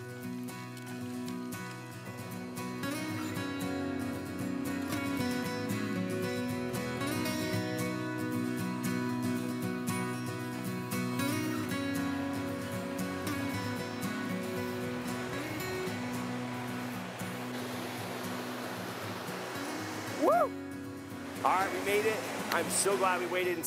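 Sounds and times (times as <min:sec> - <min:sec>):
rushing waterfall roaring: 0:00.4 - 0:23.6
rising chirp-like call: 0:20.2 - 0:20.6
speech: 0:21.5 - 0:23.6.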